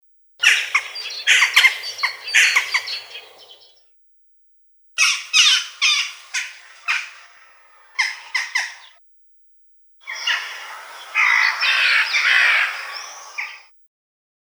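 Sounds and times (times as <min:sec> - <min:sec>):
Western jackdaw harsh squawking calls: 0:00.4 - 0:03.8, 0:05.0 - 0:09.0, 0:10.0 - 0:13.7.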